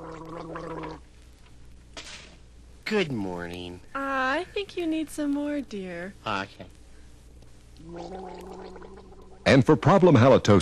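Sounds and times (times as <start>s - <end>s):
person gargling minty antiseptic mouthwash: 0.0s - 1.1s, 7.8s - 9.4s
speech: 0.4s - 1.1s, 2.9s - 6.8s, 7.8s - 10.6s.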